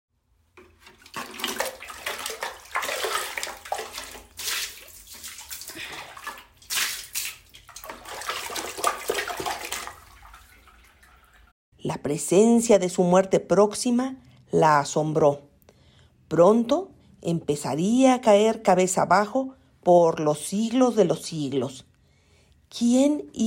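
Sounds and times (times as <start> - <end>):
water splashing and sloshing in a filled tub: 0.4 - 11.6
speech: 11.8 - 15.5, 16.3 - 21.9, 22.7 - 23.4.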